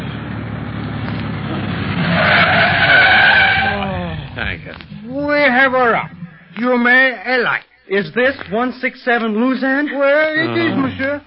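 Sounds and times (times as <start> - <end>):
taxi engine rumbling: 0.0 - 7.6
taxi tires squealing while skidding to a stop: 0.9 - 6.6
speech: 7.4 - 11.2.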